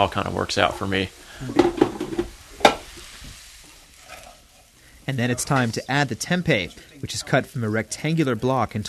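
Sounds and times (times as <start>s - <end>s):
speech: 0.0s - 1.8s, 5.1s - 8.8s
utensil scraping a pan while stirring potatoes: 0.0s - 7.0s
potatoes frying in a pan: 0.0s - 8.8s.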